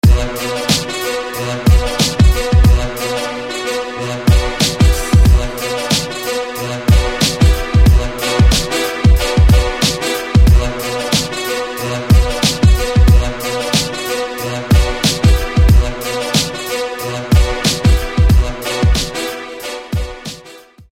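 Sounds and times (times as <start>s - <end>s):
strong horn hit: 0.0s - 20.5s.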